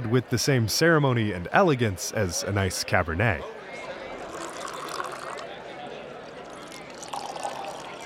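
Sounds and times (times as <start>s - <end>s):
speech: 0.1s - 3.9s
water poured from bottle into stemmed glass: 4.2s - 8.0s.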